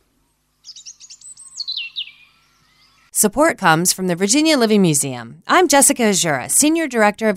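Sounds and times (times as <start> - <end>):
phalarope calls: 0.6 - 3.1
speech: 3.2 - 7.3.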